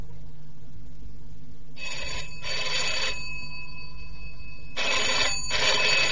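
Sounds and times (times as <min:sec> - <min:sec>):
low steady hum: 0:00.0 - 0:06.0
telephone bell ringing: 0:01.8 - 0:06.0.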